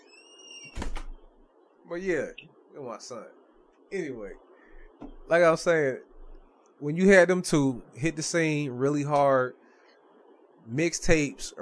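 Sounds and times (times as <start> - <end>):
faint steady electronic whine: 0.0 - 11.5
door swinging shut with a rumbling thud and rattle: 0.7 - 1.2
speech: 1.9 - 6.1, 6.8 - 9.6, 10.6 - 11.5.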